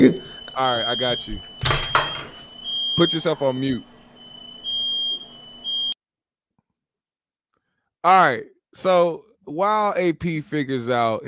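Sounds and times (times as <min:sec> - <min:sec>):
speech: 0:00.0 - 0:01.5, 0:03.0 - 0:03.9, 0:08.0 - 0:11.2
smoke alarm beeping: 0:00.0 - 0:06.0.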